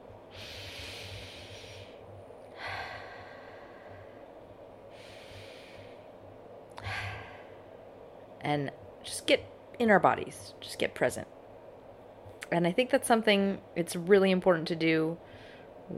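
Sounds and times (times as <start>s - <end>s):
deep slow breaths during a guided relaxation exercise: 0.2s - 8.0s, 15.2s - 15.9s
speech: 8.4s - 11.3s, 12.5s - 15.3s.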